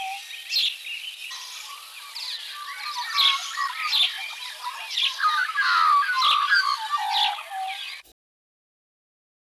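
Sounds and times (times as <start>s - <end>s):
magpie calls: 2.5s - 7.9s.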